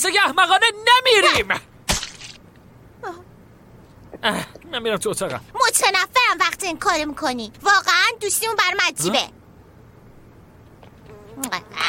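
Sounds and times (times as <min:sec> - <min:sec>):
speech: 0:00.0 - 0:01.7, 0:03.0 - 0:03.2, 0:04.2 - 0:09.4, 0:11.4 - 0:11.8
housefly buzzing: 0:10.8 - 0:11.8.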